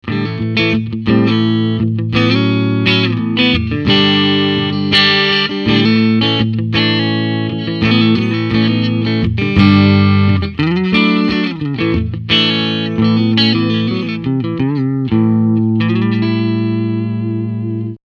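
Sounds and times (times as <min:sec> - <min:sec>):
Orange TH30C-BK amplifier clean tone: 0:00.0 - 0:18.0.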